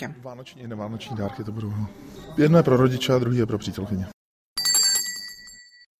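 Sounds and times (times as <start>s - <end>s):
speech: 0.0s - 4.1s
small bell ringing: 4.6s - 5.9s.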